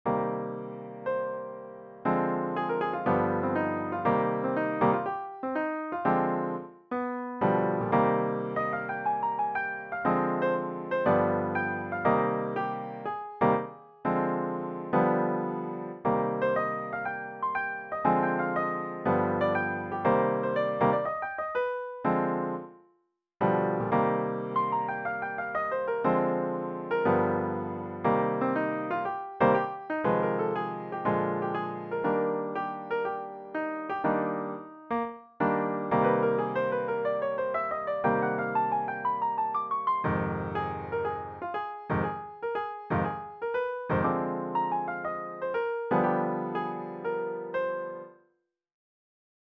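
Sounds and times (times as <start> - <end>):
ad-lib scale over 24 bars: 0.1 - 22.8, 23.4 - 48.1.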